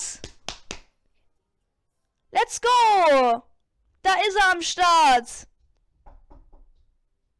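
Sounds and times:
speech: 2.5s - 3.5s, 4.1s - 5.5s
knocking on a door: 6.0s - 6.8s.

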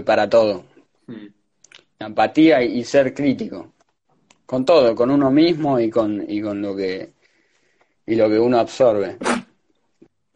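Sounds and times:
speech: 0.0s - 1.3s, 2.0s - 3.8s, 4.5s - 7.2s, 8.1s - 9.4s
person sneezing: 9.2s - 9.6s.

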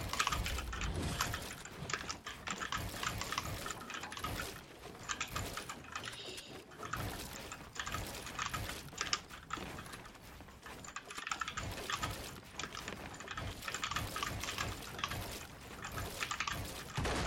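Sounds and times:
rapid computer keyboard typing: 0.0s - 17.1s.

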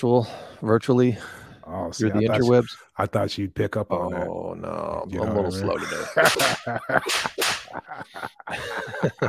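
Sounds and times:
speech: 0.0s - 9.2s
laughter: 5.1s - 9.2s
sharp whip-like slap sound effects: 6.2s - 7.8s.

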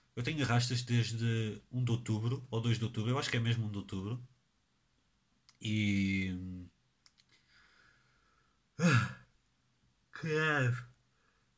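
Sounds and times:
speech: 0.2s - 4.3s, 5.6s - 6.7s, 10.2s - 10.9s
yawn: 8.8s - 9.3s.

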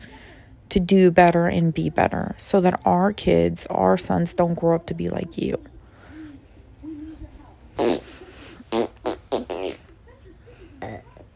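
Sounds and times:
speech: 0.7s - 5.7s, 7.8s - 8.0s
faint murmuring voices: 4.8s - 11.3s
loud burps: 7.8s - 8.0s, 10.8s - 11.1s.

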